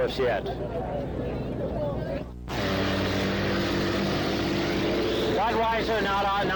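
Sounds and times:
speech: 0.0s - 1.6s, 5.4s - 6.5s
racing boats roaring on the course before a race: 2.5s - 6.5s.

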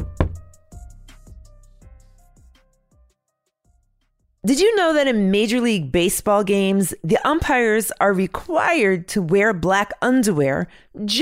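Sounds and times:
hollow knocks on wood: 0.0s - 0.5s
speech: 4.5s - 11.1s.

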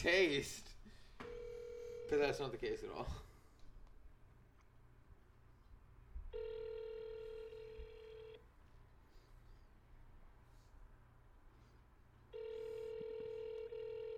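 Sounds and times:
speech: 0.0s - 0.7s, 2.1s - 3.3s
buzzy phone ringback tone: 1.3s - 2.2s, 6.3s - 8.4s, 12.3s - 14.1s.

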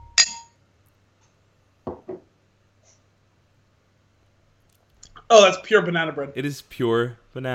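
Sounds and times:
glasses clinking in a toast: 0.0s - 0.5s
speech: 5.3s - 7.5s.

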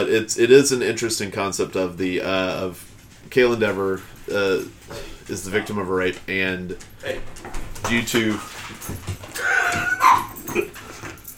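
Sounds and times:
speech: 0.0s - 9.6s
dog whimpering with high-pitched whines: 9.4s - 10.8s.

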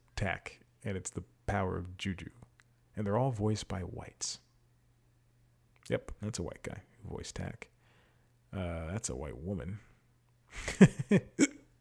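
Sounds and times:
speech: 0.2s - 2.4s, 3.0s - 4.4s, 5.9s - 7.7s, 8.5s - 9.9s, 10.5s - 11.6s
person hiccuping: 11.3s - 11.7s.

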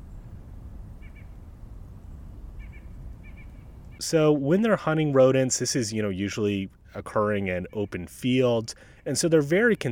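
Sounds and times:
low rumble of outdoor noise: 0.0s - 9.9s
white-breasted nuthatch nasal calls: 2.6s - 4.0s
speech: 4.0s - 9.9s.

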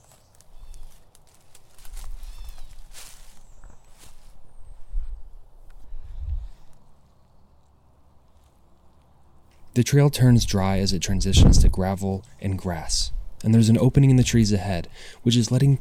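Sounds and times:
footsteps squelching through mud on a wooded trail: 0.0s - 4.4s
speech: 9.8s - 15.7s.

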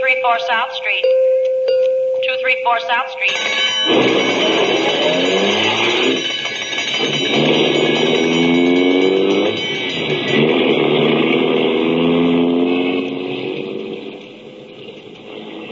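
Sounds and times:
speech: 0.2s - 1.3s, 2.3s - 6.4s, 7.0s - 7.8s
ambulance engine revving and speeding away: 3.3s - 15.7s.

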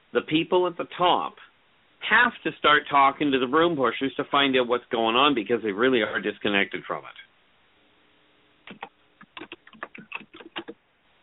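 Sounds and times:
speech: 0.1s - 1.4s, 2.0s - 7.2s
computer keyboard typing: 8.7s - 10.8s.

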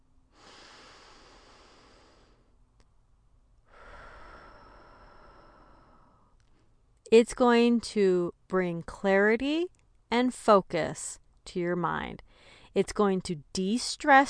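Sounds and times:
deep calm breaths taken slowly as tactical breathing: 0.2s - 2.6s, 3.6s - 6.8s, 12.2s - 12.8s
speech: 7.1s - 14.2s.

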